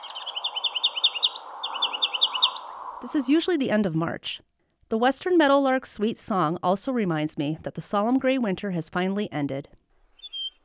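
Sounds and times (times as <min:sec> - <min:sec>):
ruby-crowned kinglet singing in a backyard near the Bitterroot River: 0:00.0 - 0:03.8, 0:10.2 - 0:10.6
speech: 0:03.0 - 0:09.8.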